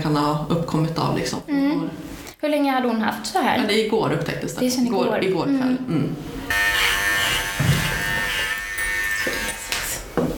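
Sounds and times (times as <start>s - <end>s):
speech: 0.1s - 6.6s
electric clipper shaving an animal's fur before a blood draw: 6.4s - 10.2s.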